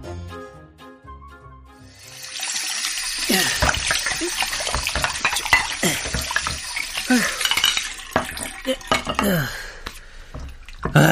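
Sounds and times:
running tap water pouring into a sink: 1.9s - 9.1s, 10.3s - 10.9s
dishes clinking and knocking together: 2.9s - 9.4s.

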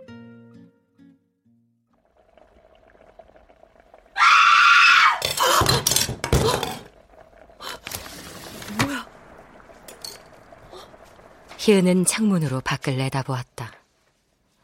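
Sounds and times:
woman's piercing scream: 4.2s - 5.6s
speech: 11.7s - 13.7s.

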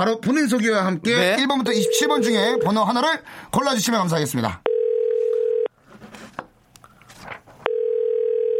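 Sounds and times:
speech: 0.0s - 4.7s
phone ringback tone while calling a listener: 1.8s - 2.8s, 4.7s - 5.7s, 7.7s - 8.5s.

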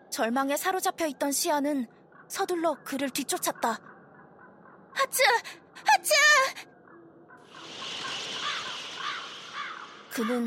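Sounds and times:
speech: 0.2s - 3.9s, 5.0s - 6.7s, 10.2s - 10.4s
crow cawing: 7.5s - 10.4s.

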